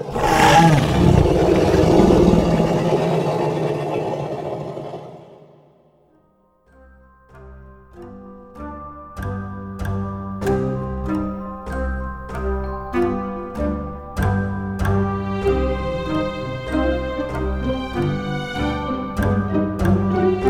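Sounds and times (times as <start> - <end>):
deep bellowing creature roar: 0.0 - 5.6
soft sustained musical tones: 0.0 - 20.4.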